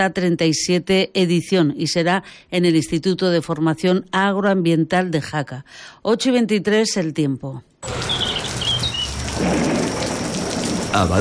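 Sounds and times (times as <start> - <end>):
speech: 0.0 - 8.3, 10.9 - 11.1
high bird chirps: 7.8 - 9.3
heavy rain: 7.8 - 11.1
low thunder rumble: 7.9 - 11.1.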